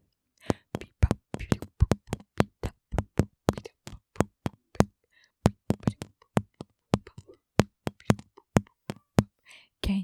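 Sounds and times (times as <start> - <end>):
rapid drumming with Twizzler candy drumsticks: 0.4 - 9.3.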